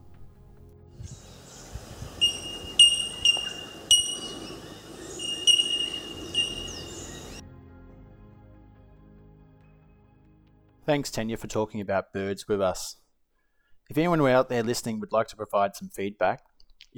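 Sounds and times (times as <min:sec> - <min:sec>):
bell miner calling with ringing metallic notes: 0:00.0 - 0:07.4
faint low background rumble: 0:00.0 - 0:07.7
speech: 0:10.9 - 0:13.0, 0:13.9 - 0:16.9.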